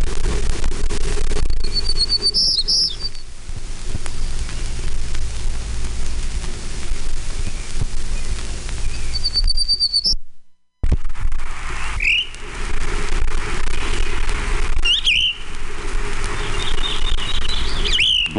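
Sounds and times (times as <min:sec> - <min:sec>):
steady rushing noise: 0:00.0 - 0:10.2, 0:10.8 - 0:18.3
Townsend's warbler singing: 0:01.6 - 0:03.3, 0:06.8 - 0:10.2, 0:16.4 - 0:18.3.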